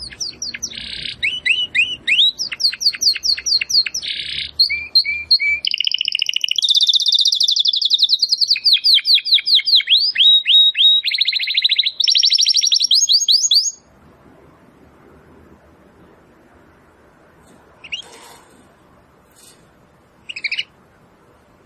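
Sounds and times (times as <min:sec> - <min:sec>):
Belgian domestic canary singing with chirps, trills and whistled slurs: 0:00.0 - 0:13.9, 0:17.8 - 0:18.6, 0:20.2 - 0:20.9.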